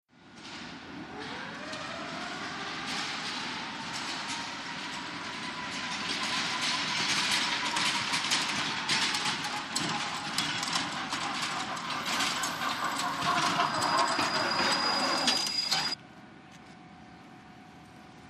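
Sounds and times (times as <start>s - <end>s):
electric baggage car at a train station: 0.4s - 16.0s.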